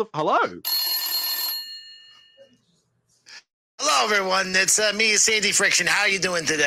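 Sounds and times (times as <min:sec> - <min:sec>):
speech: 0:00.0 - 0:00.8, 0:03.9 - 0:06.6
old-style telephone bell ringing: 0:00.7 - 0:02.6.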